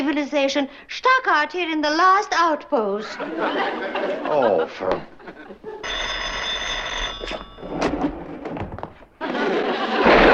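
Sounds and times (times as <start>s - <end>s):
speech: 0.1s - 6.0s
laughter: 3.0s - 5.8s, 9.2s - 10.3s
telephone bell ringing: 5.8s - 8.0s
knocking thuds and clatters: 7.2s - 9.2s.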